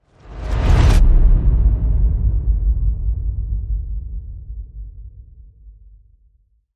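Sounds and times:
whoosh: 0.1 - 3.7
boom: 0.7 - 4.9.

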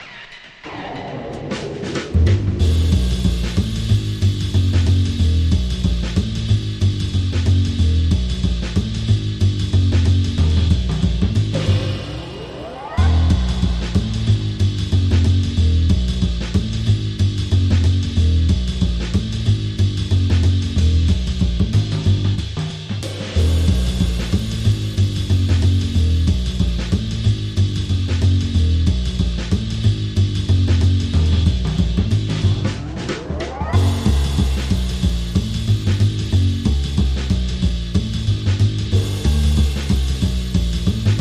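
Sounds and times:
bass: 0.0 - 41.1
drums: 0.0 - 41.1
sound effects: 11.5 - 15.3, 32.4 - 35.4.

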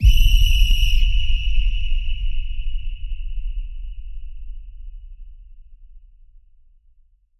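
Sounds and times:
referee whistle: 0.0 - 2.2
low boom: 0.0 - 6.9.

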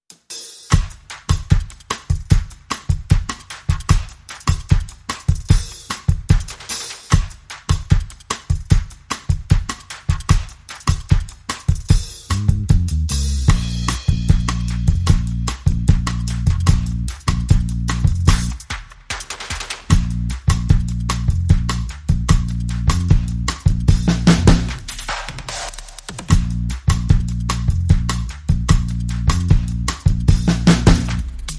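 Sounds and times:
bossa nova drums: 0.0 - 31.5
bossa nova bass: 11.9 - 18.6, 19.9 - 31.5.

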